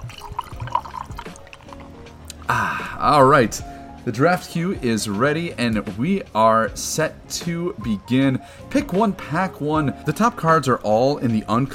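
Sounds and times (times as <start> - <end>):
drink pouring into a glass for a toast: 0.0 - 2.1
speech: 2.5 - 11.7.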